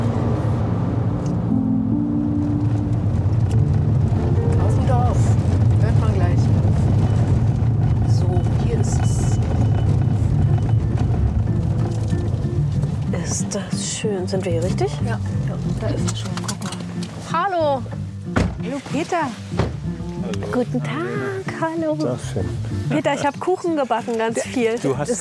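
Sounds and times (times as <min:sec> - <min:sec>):
car driving along a hilly country road: 0:00.0 - 0:25.1
speech: 0:14.3 - 0:16.7, 0:17.3 - 0:18.0, 0:18.6 - 0:19.6, 0:20.3 - 0:25.1.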